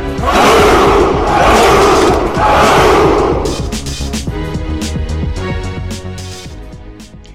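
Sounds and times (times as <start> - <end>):
music: 0.0 - 7.3
large crowd of racers shouting a battle cry: 0.2 - 3.7.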